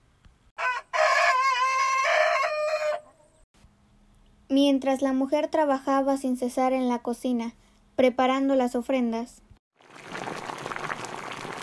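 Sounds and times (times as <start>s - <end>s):
chicken crowing: 0.6s - 3.3s
speech: 4.6s - 9.4s.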